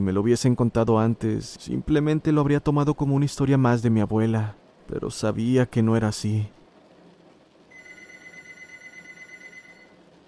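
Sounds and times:
speech: 0:00.0 - 0:06.6
low room rumble: 0:00.0 - 0:10.2
landline telephone ringing with a bright electronic trill: 0:07.7 - 0:10.0.

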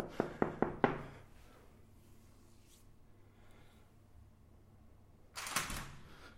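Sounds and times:
knocking on a door: 0:00.0 - 0:01.1.

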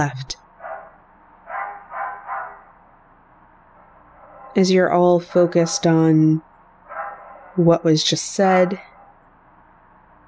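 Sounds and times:
speech: 0:00.0 - 0:00.4, 0:04.5 - 0:06.5, 0:07.6 - 0:08.9
faint steady hum: 0:00.0 - 0:10.2
dog barking: 0:00.6 - 0:02.8, 0:04.2 - 0:04.6, 0:06.9 - 0:07.6.

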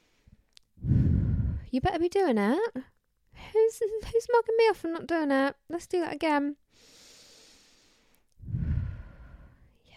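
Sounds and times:
deep breathy low exhale: 0:00.0 - 0:01.7, 0:06.7 - 0:09.9
speech: 0:01.7 - 0:07.0.

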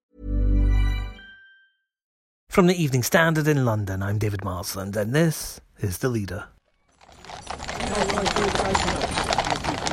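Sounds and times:
speech: 0:02.6 - 0:06.6
many horse hooves of an artillery troop clip-clopping on pavement in Windsor England: 0:06.9 - 0:09.9.

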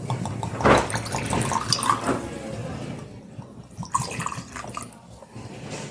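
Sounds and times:
whiskey pouring into glasses: 0:00.2 - 0:02.1, 0:03.4 - 0:05.3.

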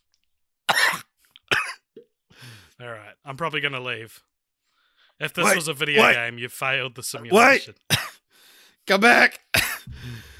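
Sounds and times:
person coughing: 0:00.7 - 0:01.8, 0:07.3 - 0:08.2, 0:09.6 - 0:10.0
speech: 0:02.4 - 0:04.3, 0:05.2 - 0:07.8, 0:08.8 - 0:10.2.

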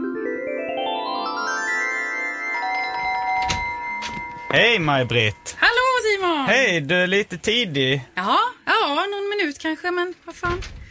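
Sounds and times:
electronic doorbell chime rung by someone at the door: 0:00.6 - 0:06.2
speech: 0:04.5 - 0:10.8.

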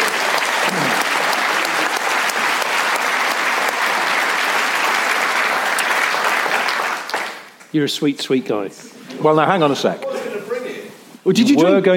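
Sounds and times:
room full of people applauding: 0:00.0 - 0:07.6
speech: 0:07.7 - 0:10.1, 0:11.2 - 0:11.9.

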